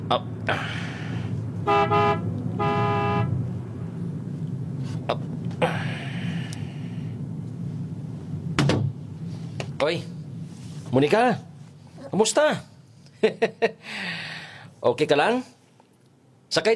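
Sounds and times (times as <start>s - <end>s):
continuous low car rumble: 0.0s - 13.3s
speech: 0.1s - 0.8s, 9.8s - 10.1s, 10.9s - 11.5s, 12.1s - 15.5s, 16.5s - 16.7s
car horn honking: 1.6s - 3.5s.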